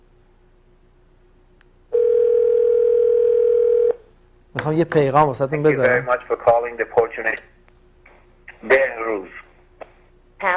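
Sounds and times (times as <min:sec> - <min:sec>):
telephone dial tone while calling an answering machine: 0:02.0 - 0:04.0
speech: 0:04.6 - 0:07.5, 0:08.6 - 0:09.4, 0:10.4 - 0:10.5.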